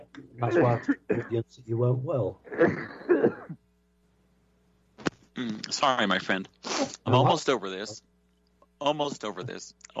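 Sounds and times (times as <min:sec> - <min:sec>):
speech: 0:00.2 - 0:03.6, 0:05.4 - 0:08.1, 0:08.8 - 0:09.9
person clearing throat with a rough rasping rumble: 0:00.4 - 0:01.4, 0:02.5 - 0:03.6, 0:05.4 - 0:05.7.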